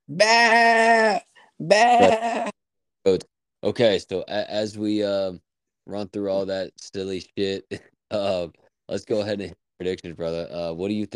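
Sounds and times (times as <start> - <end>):
speech: 0.1 - 0.9, 1.6 - 2.5, 3.1 - 11.1
goat bleating: 0.1 - 2.6.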